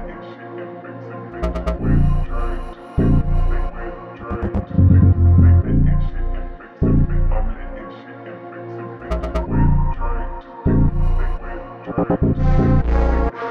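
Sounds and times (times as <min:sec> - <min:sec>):
melody loop in A# minor at 125 BPM: 0:01.4 - 0:07.7, 0:09.1 - 0:13.3.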